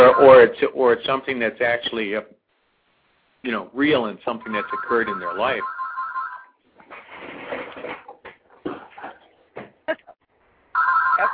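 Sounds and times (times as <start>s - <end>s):
telephone ringing with electronic tone: 0.0s - 0.5s, 4.4s - 6.6s, 10.8s - 11.3s
speech: 0.1s - 2.4s, 3.4s - 5.8s.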